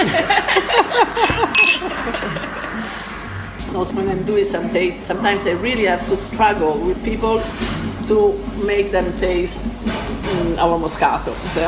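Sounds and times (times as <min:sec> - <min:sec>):
people chuckling softly: 0:00.0 - 0:03.3
wine glasses clinking in a toast: 0:00.9 - 0:02.6
speech: 0:03.8 - 0:11.6.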